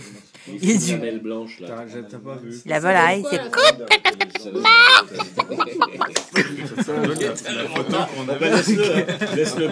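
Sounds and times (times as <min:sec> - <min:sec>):
speech: 0:00.5 - 0:09.7
laughter: 0:03.4 - 0:09.7
person mimicking a chicken clucking with a Québécois accent: 0:03.6 - 0:06.1.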